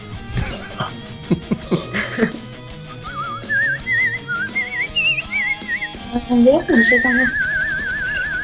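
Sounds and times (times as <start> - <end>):
laughter: 0.3 - 2.5
person whistling a melody: 2.9 - 6.0, 6.7 - 8.4.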